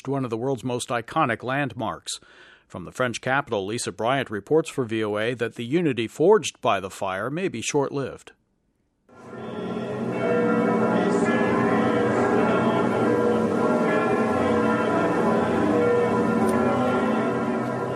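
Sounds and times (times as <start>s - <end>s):
speech: 0.0s - 8.4s
church bells in France ringing: 9.1s - 17.9s.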